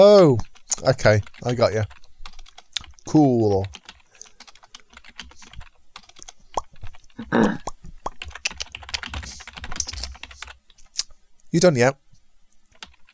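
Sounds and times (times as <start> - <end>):
speech: 0.0 - 2.0, 3.1 - 3.8, 7.2 - 7.7, 11.5 - 12.0
fast typing on a computer keyboard: 0.1 - 7.2, 8.1 - 10.6, 12.7 - 13.1.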